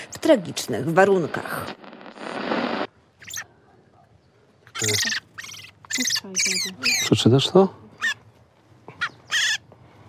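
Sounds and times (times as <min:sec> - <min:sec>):
speech: 0:00.2 - 0:01.9, 0:04.8 - 0:05.2, 0:06.0 - 0:07.8
small songbirds chirping and calling: 0:03.0 - 0:10.0.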